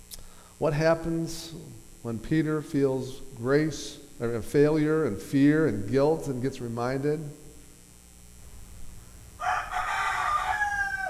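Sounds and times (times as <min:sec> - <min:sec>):
speech: 0:00.6 - 0:07.4
rooster crowing: 0:09.4 - 0:11.0.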